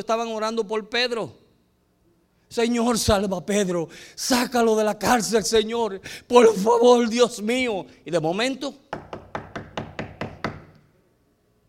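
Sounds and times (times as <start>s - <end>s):
speech: 0.0s - 1.4s, 2.5s - 9.1s
quick solid knocks on a door: 8.9s - 10.8s.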